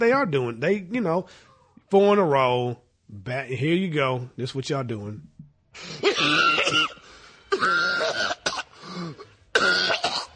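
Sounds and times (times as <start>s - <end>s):
speech: 0.0s - 7.0s, 7.6s - 8.4s
person coughing: 5.9s - 10.3s.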